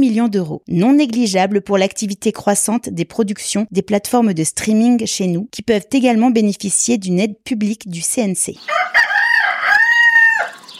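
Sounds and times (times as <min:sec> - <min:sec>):
speech: 0:00.0 - 0:09.0
rooster crowing cock-a-doodle-doo: 0:08.6 - 0:10.7.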